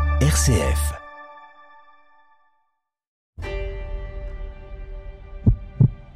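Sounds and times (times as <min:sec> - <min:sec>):
speech: 0:00.2 - 0:01.0
fast heavy heartbeat thudding: 0:05.5 - 0:06.1.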